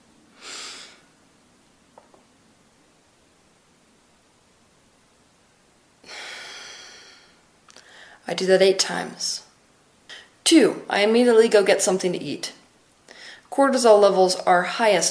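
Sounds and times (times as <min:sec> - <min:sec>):
steady low hiss: 0:00.0 - 0:15.1
slow deep breathing in a morning breathing exercise: 0:00.4 - 0:01.1, 0:06.0 - 0:08.2, 0:13.1 - 0:13.5
speech: 0:08.3 - 0:09.5, 0:10.5 - 0:12.6, 0:13.6 - 0:15.1.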